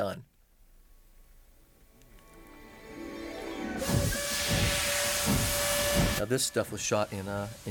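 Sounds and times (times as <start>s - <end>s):
speech: 0.0s - 0.3s, 6.2s - 7.6s
train steam hissing in Jordan: 3.6s - 7.6s.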